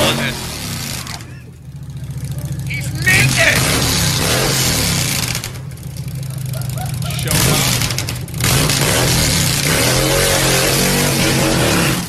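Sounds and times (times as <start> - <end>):
motorcycle engine revving loudly: 0.0 - 12.0
laughter: 0.8 - 4.1, 6.0 - 8.0
person shouting excitedly: 2.6 - 3.7.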